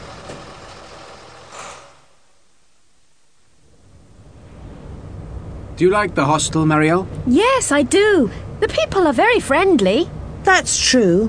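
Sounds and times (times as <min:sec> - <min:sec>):
bus engine rumbling as the bus leaves: 0:00.0 - 0:02.4, 0:03.7 - 0:11.2
hissy burst: 0:01.4 - 0:02.4
speech: 0:05.8 - 0:11.2.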